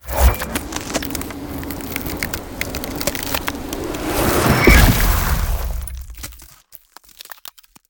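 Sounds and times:
ice spell direct icicle spear damage: 0.0s - 6.2s.

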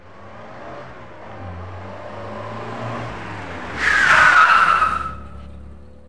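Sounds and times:
car tire squeal: 3.6s - 5.7s.

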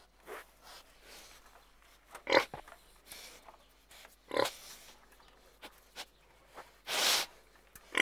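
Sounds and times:
several pigs grunting and snorting: 2.2s - 2.6s, 4.2s - 5.0s, 6.8s - 8.0s.

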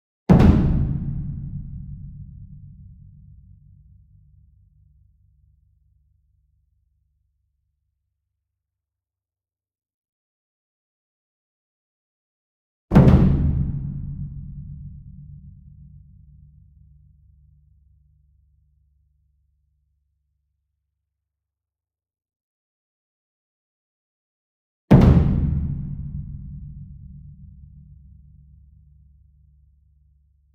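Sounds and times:
ensemble concert bass drum: 0.3s - 3.0s, 12.9s - 15.7s, 24.9s - 27.4s
medium taiko drum flam: 0.3s - 3.4s, 12.9s - 15.9s, 24.9s - 27.9s.

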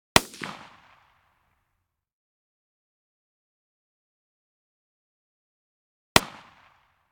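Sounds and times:
.223 rifle blasts: 0.2s - 1.1s, 6.2s - 6.8s.

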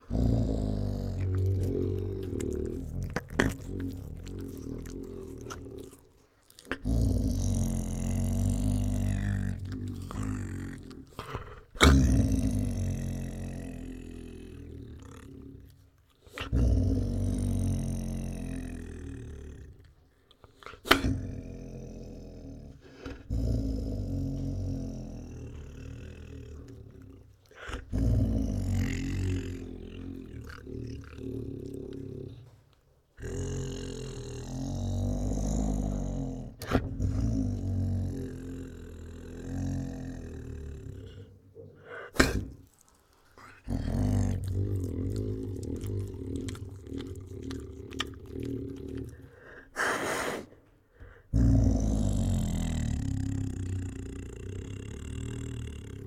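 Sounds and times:
tiger growling forcefully: 0.0s - 20.0s, 20.6s - 56.0s.

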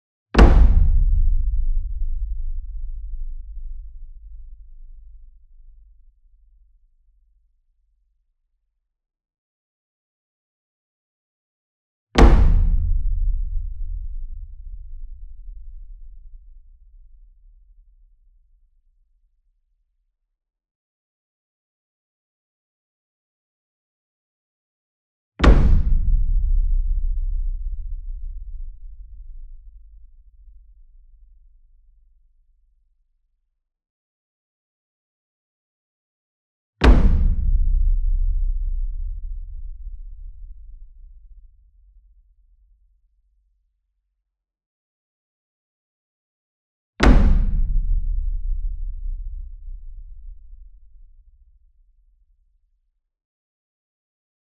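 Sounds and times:
60 inch taiko drum flam with soft beater, near: 0.4s - 4.3s, 12.2s - 16.0s, 25.4s - 29.2s, 36.8s - 40.6s, 47.0s - 50.7s.

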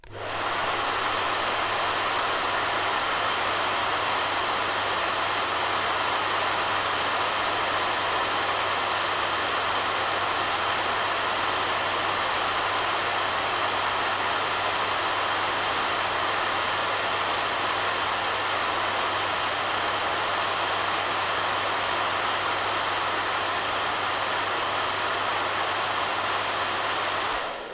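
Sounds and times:
hair dryer blowing: 0.0s - 27.7s.

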